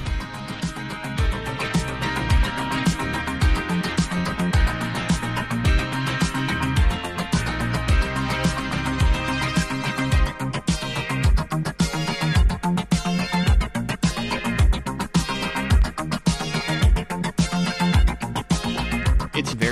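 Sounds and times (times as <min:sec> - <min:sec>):
bright layered keyboard lines: 0:00.0 - 0:19.6
pulsing bassline: 0:00.0 - 0:19.6
punchy drum machine beat: 0:00.0 - 0:19.6
synth-heavy Italo disco instrumental made in studio: 0:00.0 - 0:19.6.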